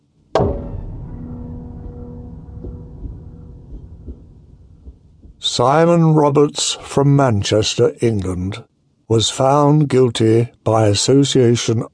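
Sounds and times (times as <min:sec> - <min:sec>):
wooden gavel striking a judge's desk in a courtroom: 0:00.4 - 0:05.5
faint low thumps: 0:00.4 - 0:06.6
speech: 0:05.6 - 0:11.9.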